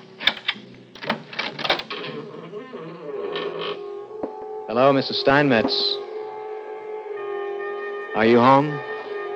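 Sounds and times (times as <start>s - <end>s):
key turning in a door lock: 0.2s - 2.2s
speech: 4.7s - 6.0s, 8.2s - 8.9s.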